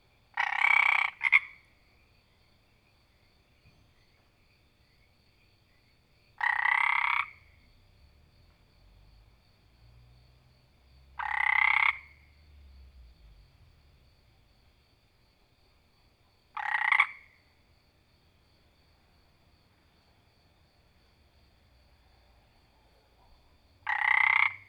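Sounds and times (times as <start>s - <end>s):
frog giving loud rasping croaks: 0.3s - 1.8s, 6.4s - 7.7s, 11.1s - 12.4s, 16.5s - 17.6s, 23.0s - 24.6s.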